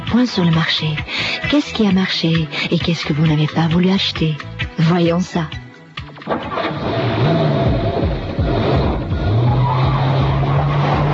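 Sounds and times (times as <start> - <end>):
speech: 0.1 - 5.6, 6.3 - 7.0
racing car tyres screeching in long skids: 6.2 - 11.1
racing car engine roaring and revving: 6.3 - 11.1.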